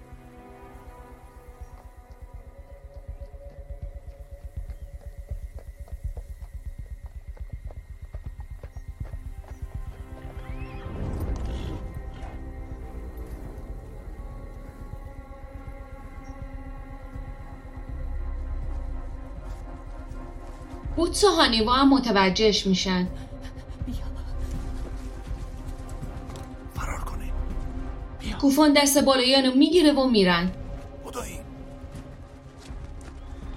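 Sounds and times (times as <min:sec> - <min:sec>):
ridden horse's hooves clip-clopping: 0:00.1 - 0:21.0, 0:23.8 - 0:26.8, 0:30.7 - 0:33.5
speech: 0:21.0 - 0:23.2, 0:28.4 - 0:30.6.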